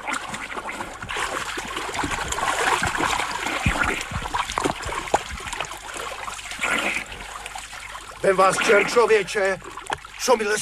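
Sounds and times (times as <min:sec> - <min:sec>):
water splashing as someone swims in a river: 0:00.0 - 0:10.6
speech: 0:08.2 - 0:10.6.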